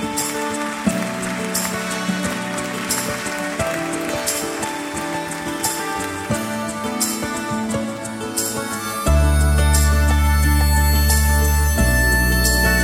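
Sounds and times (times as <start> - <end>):
steady rain falling: 0.2 - 6.6
sustained musical tones: 0.6 - 12.8.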